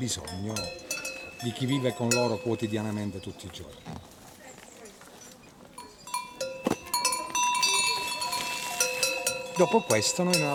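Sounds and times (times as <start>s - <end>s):
speech: 0.0s - 0.8s, 1.4s - 4.1s, 9.6s - 10.5s
cowbells clanking as disturbed cows stir: 0.0s - 3.7s, 5.7s - 10.5s.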